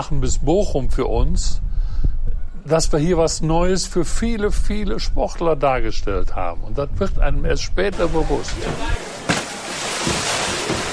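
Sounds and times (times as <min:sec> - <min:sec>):
speech: 0:00.0 - 0:09.1
steady wind noise: 0:00.0 - 0:10.9
water skier falling into the water with a splash: 0:08.0 - 0:10.9.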